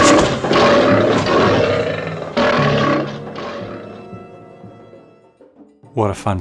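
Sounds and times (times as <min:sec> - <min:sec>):
lion roaring: 0:00.0 - 0:05.1
speech: 0:06.0 - 0:06.3.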